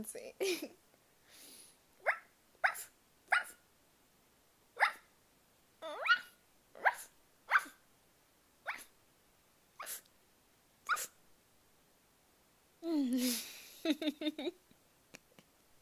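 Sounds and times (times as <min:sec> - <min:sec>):
speech: 0:00.0 - 0:00.8, 0:14.0 - 0:14.6
person imitating a dog barking: 0:02.0 - 0:03.6, 0:05.8 - 0:07.7, 0:10.9 - 0:11.2.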